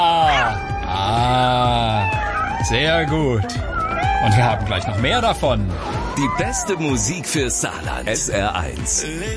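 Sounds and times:
cat meowing: 0.2 - 5.2
speech: 2.7 - 9.3.

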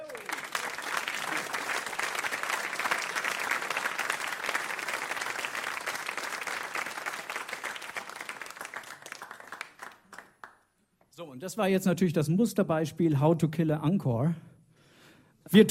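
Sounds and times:
large audience applauding: 0.0 - 10.6
speech: 11.4 - 14.5.

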